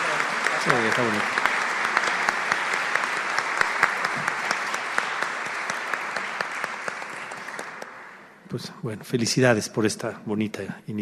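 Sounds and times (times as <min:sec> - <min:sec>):
applause from a room full of people after a council vote: 0:00.0 - 0:08.4
speech: 0:00.6 - 0:01.5, 0:08.5 - 0:11.0.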